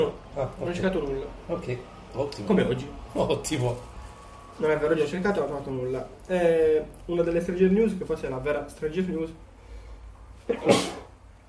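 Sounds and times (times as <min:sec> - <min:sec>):
speech: 0:00.0 - 0:03.9, 0:04.6 - 0:09.4, 0:10.5 - 0:11.0
single sharp sneeze: 0:10.4 - 0:11.2.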